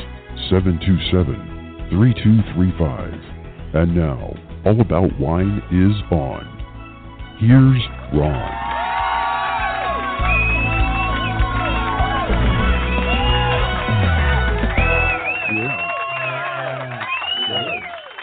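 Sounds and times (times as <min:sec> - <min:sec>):
speech: 0:00.5 - 0:06.6, 0:07.4 - 0:08.6
large crowd cheering, whooping and shouting: 0:08.2 - 0:18.2.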